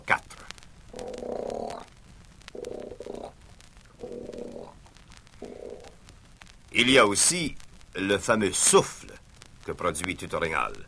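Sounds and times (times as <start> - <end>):
bull moose grunting: 1.0 - 1.9, 4.0 - 4.8, 5.4 - 5.9
speech: 6.8 - 9.0, 9.6 - 10.8.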